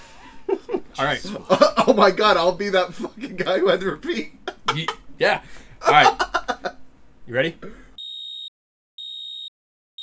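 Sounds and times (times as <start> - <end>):
laughter: 0.0 - 8.0
speech: 1.0 - 6.2, 7.3 - 7.8
alarm clock beeping: 8.0 - 10.0.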